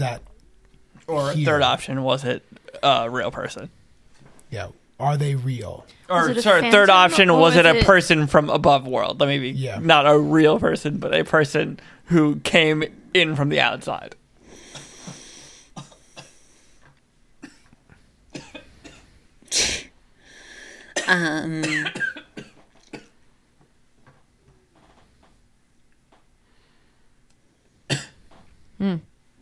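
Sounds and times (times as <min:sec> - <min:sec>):
speech: 0:00.0 - 0:00.3, 0:01.0 - 0:03.8, 0:04.5 - 0:14.2, 0:21.1 - 0:22.1, 0:28.8 - 0:29.1
person coughing: 0:15.8 - 0:16.5, 0:18.3 - 0:19.9, 0:21.0 - 0:23.1, 0:27.9 - 0:28.2.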